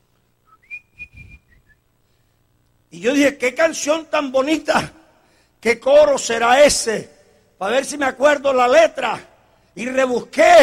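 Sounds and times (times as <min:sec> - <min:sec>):
faint low rumbling: 0:00.0 - 0:02.0
person whistling a lilting melody: 0:00.5 - 0:01.8
speech: 0:02.9 - 0:05.0, 0:05.6 - 0:10.6.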